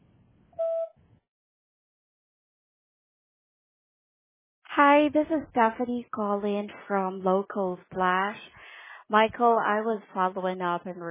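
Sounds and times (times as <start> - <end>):
voicemail recording electronic beep tone: 0.6 - 0.9
speech: 4.8 - 11.0.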